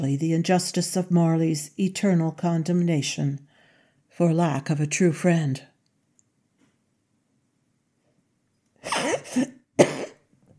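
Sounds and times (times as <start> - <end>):
speech: 0.0 - 3.5, 4.2 - 5.7, 8.8 - 10.0
raspy wheezing cough: 8.8 - 10.3.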